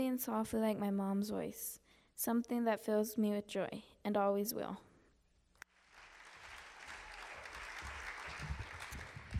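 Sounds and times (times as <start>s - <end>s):
speech: 0.0s - 4.9s
audience applause for a performer's final piece: 5.7s - 9.3s.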